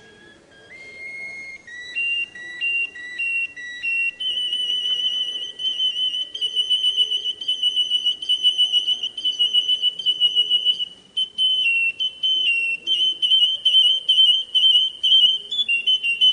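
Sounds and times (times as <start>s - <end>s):
domestic Atlantic canary of the Russian song type singing whistled trills: 0.0s - 16.3s.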